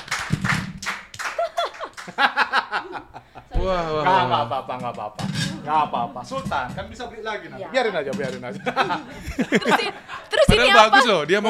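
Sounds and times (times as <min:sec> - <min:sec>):
hand clapping applause for a magic trick: 0:00.0 - 0:02.2
bright voiced laughter: 0:01.3 - 0:06.7, 0:07.9 - 0:11.2
speech: 0:02.2 - 0:11.4.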